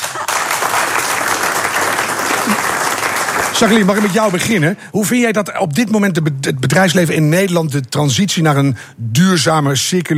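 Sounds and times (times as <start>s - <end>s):
large audience applause: 0.0s - 4.7s
speech: 2.5s - 2.7s, 3.4s - 10.1s.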